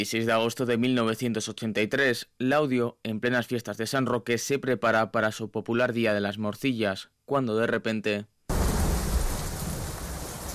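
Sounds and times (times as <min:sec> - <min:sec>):
speech: 0:00.0 - 0:08.3
heavy rain in Laudio: 0:08.5 - 0:10.5
low rumble of thunder: 0:08.5 - 0:10.5.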